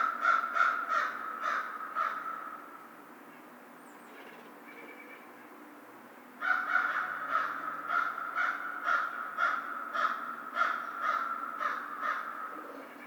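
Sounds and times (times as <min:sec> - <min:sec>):
American crow giving harsh caws: 0:00.0 - 0:02.8, 0:06.4 - 0:12.9.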